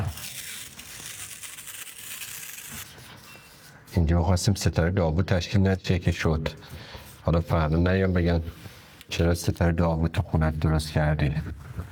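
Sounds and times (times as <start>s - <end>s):
adhesive tape being stuck onto a window of a home: 0.0s - 3.2s
speech: 4.0s - 11.6s.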